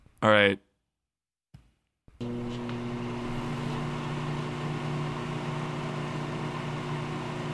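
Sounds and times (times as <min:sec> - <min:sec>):
speech: 0:00.2 - 0:00.7
microwave oven electrical hum and fan drone: 0:02.2 - 0:07.5.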